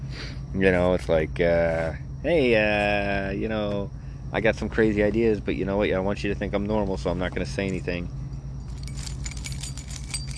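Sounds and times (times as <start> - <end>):
low steady hum: 0.0 - 10.3
speech: 0.5 - 8.2
keys jangling and clinking: 8.6 - 10.3.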